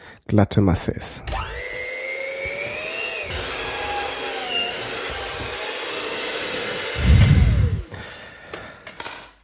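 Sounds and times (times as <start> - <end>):
speech: 0.3 - 1.6
electric mixer beating dough into a smooth mass: 1.3 - 8.2.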